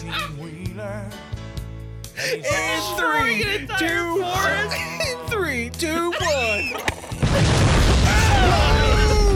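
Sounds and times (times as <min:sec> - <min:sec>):
speech: 0:02.2 - 0:07.6
dynamite exploding in a video game: 0:07.2 - 0:09.3.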